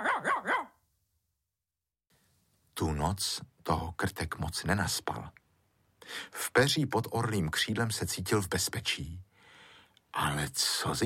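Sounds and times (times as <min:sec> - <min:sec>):
fox terrier barking: 0:00.0 - 0:00.8
speech: 0:02.8 - 0:05.4, 0:06.0 - 0:09.3, 0:10.2 - 0:11.0.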